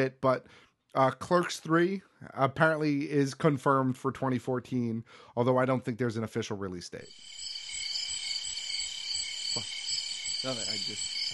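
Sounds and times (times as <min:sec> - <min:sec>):
speech: 0:00.0 - 0:07.4, 0:09.6 - 0:09.8, 0:10.4 - 0:11.3
chorus of crickets chirping: 0:07.1 - 0:11.3.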